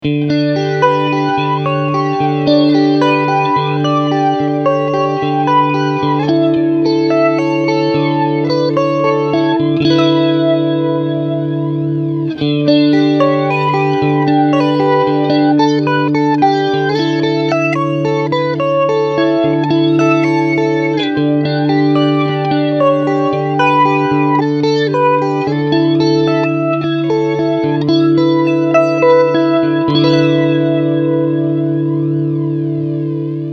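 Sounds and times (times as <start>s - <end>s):
chorus flanger effect: 0.0s - 33.5s.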